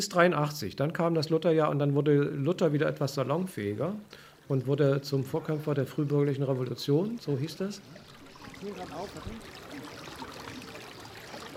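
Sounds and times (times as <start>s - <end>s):
speech: 0.0s - 9.6s
small brook trickling and splashing: 3.1s - 11.5s.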